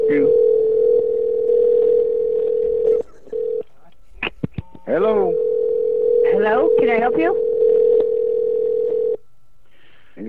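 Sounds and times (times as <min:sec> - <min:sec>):
telephone ringing tone: 0:00.0 - 0:03.6, 0:05.1 - 0:09.2
speech: 0:06.8 - 0:07.4.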